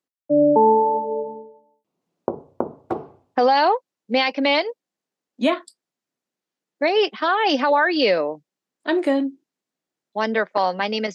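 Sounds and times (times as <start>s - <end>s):
two-note electronic chime: 0.3s - 1.7s
medical student knocking on a door: 2.2s - 3.3s
speech: 3.4s - 4.8s, 5.4s - 5.8s, 6.8s - 9.4s, 10.1s - 11.1s.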